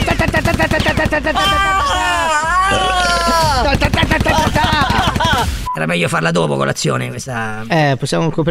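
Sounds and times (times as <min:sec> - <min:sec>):
automatic gunfire sound effect: 0:00.0 - 0:01.4, 0:03.8 - 0:05.6
laughter: 0:00.0 - 0:05.7
speech: 0:00.6 - 0:02.1, 0:05.8 - 0:08.5
long wavering wailing cry: 0:01.4 - 0:03.8.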